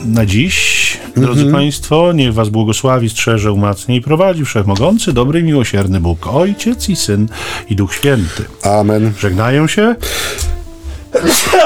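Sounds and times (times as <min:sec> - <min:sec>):
speech: 0:00.0 - 0:10.5, 0:11.1 - 0:11.6
laughter: 0:11.1 - 0:11.6
person sneezing: 0:11.1 - 0:11.6.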